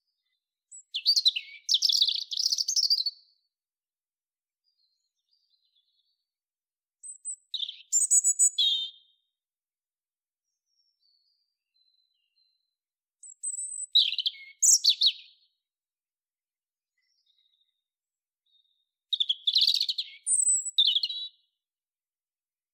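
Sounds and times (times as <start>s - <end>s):
European robin Erithacus rubecula singing: 0.2s - 3.4s, 7.0s - 9.3s, 10.4s - 15.6s, 16.9s - 21.6s.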